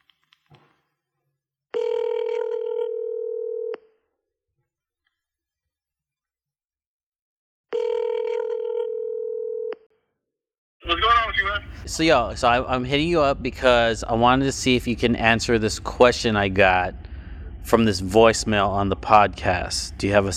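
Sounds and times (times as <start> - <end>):
phone ringback tone while calling: 1.8 - 3.8, 7.7 - 9.8
speech: 11.6 - 17.0, 17.6 - 20.3.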